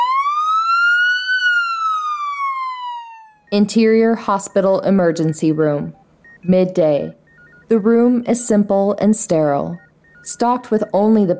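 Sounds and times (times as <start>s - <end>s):
emergency vehicle siren wailing: 0.0s - 3.6s
speech: 3.5s - 11.3s.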